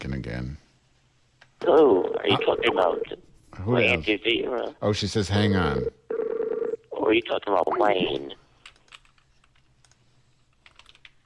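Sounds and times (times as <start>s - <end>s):
speech: 0.0s - 0.6s, 1.6s - 6.0s, 7.1s - 8.4s
typing on a computer keyboard: 8.6s - 11.2s.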